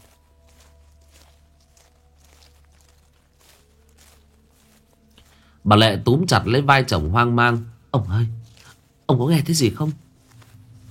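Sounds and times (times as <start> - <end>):
footsteps rustling and crunching on dry leaves outdoors: 0.0 - 10.8
speech: 5.6 - 8.4, 9.1 - 10.0.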